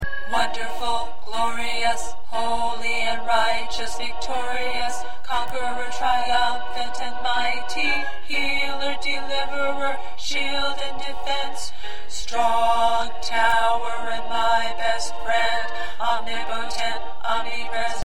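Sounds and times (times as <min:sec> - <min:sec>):
second tenor choir voice: 0:00.0 - 0:18.0.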